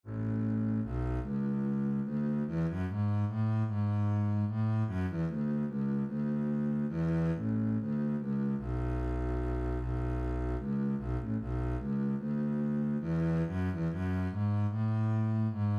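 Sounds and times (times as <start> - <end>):
minuet bass line: 0.0 - 15.7.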